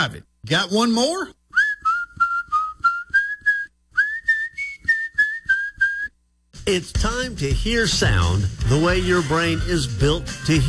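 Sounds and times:
speech: 0.0s - 1.4s, 6.7s - 10.6s
person whistling a melody: 1.6s - 6.2s.

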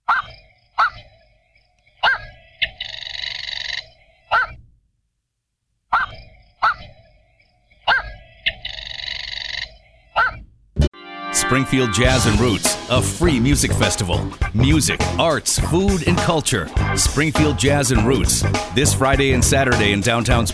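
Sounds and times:
black-crowned night heron giving harsh barking squawks: 0.0s - 1.3s, 1.9s - 4.6s, 5.9s - 10.5s
speech: 11.5s - 20.5s.

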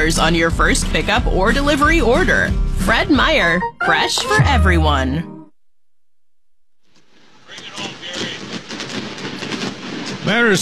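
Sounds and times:
speech: 0.1s - 5.3s, 10.3s - 10.6s
fireworks cracking and popping at a ballpark: 6.9s - 10.6s.

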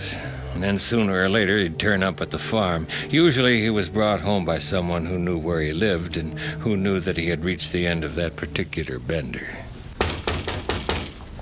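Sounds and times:
speech: 0.6s - 9.6s
firm knocking on a wooden door: 10.0s - 11.2s.

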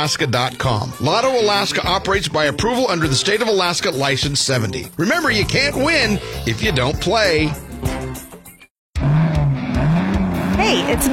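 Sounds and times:
speech: 0.0s - 7.9s
race cars roaring at a racetrack: 9.0s - 11.1s
tires squealing on a racetrack: 9.0s - 11.1s.

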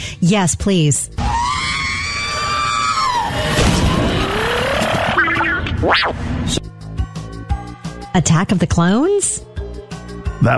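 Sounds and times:
speech: 0.2s - 1.2s, 5.8s - 6.6s, 8.2s - 9.5s, 10.4s - 10.5s
robotic droid scream electronic wail: 1.2s - 6.0s
sharp rising-and-falling whistle: 1.2s - 6.1s
warbling robotic chirps: 1.4s - 6.2s
choppy stuttering bleeps: 4.1s - 5.7s.

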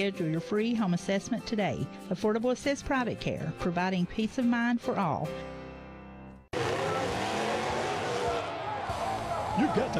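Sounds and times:
speech: 0.0s - 5.6s, 9.6s - 9.9s
big-truck engine revving at a truck and tractor pull in Cumberland County: 6.5s - 9.9s.

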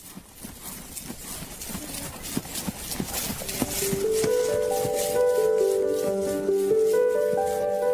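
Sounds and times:
horse hooves clip-clopping at a walk: 0.0s - 7.9s
sustained music: 3.6s - 7.9s.

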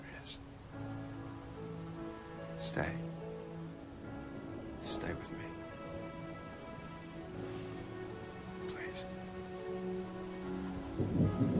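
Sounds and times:
heavy rain pouring: 0.0s - 11.5s
speech: 2.6s - 3.1s, 5.0s - 5.6s, 11.0s - 11.5s
deep rumble of thunder: 3.7s - 8.3s, 10.5s - 11.5s.

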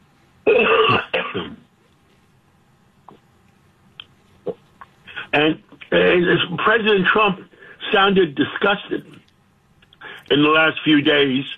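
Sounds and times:
person clearing throat: 0.5s - 1.6s
speech: 5.4s - 5.6s, 6.2s - 9.1s, 10.3s - 11.5s
faint small clicks: 9.2s - 10.0s.

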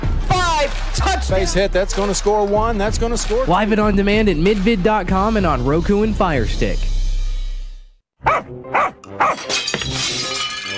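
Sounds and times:
speech: 0.7s - 7.0s, 8.3s - 10.7s
dog barking: 8.2s - 9.5s
window glass shattering: 9.0s - 10.7s
glass debris tinkling: 9.4s - 10.7s.

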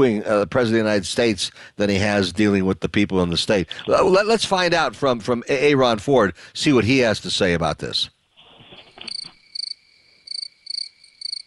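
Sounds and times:
speech: 0.0s - 8.2s
crickets chirping in short trilling bursts: 8.4s - 11.4s.

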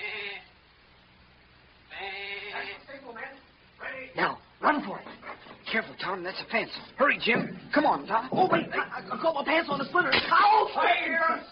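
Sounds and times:
human voice imitating a sheep's bleat: 0.0s - 0.5s, 1.9s - 2.9s
speech: 6.1s - 11.4s.

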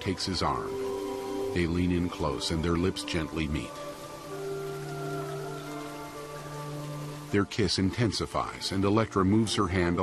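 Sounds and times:
speech: 0.0s - 0.9s, 1.5s - 3.9s, 7.3s - 10.0s
rain falling on a couple: 0.0s - 10.0s
low tonal hum: 0.4s - 7.6s.

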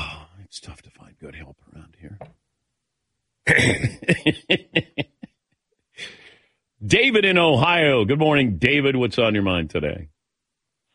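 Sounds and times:
speech: 0.6s - 2.4s, 6.9s - 10.1s
loud raspy throat clearing: 3.5s - 4.1s
laughter: 3.5s - 5.3s
breathy exhale: 6.0s - 6.6s.

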